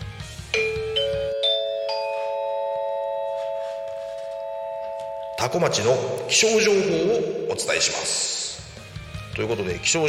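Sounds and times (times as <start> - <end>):
low music: 0.0 - 10.0
public address chime with four rising bell-like tones introducing a town weather report: 0.6 - 8.3
speech: 5.4 - 8.3, 9.4 - 10.0.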